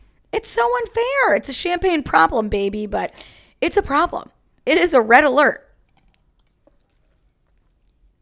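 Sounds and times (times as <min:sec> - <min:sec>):
speech: 0:00.4 - 0:05.6
faint swallow: 0:05.7 - 0:08.2
person sipping a drink: 0:05.7 - 0:08.2
soft wet mouth sounds: 0:05.7 - 0:08.2.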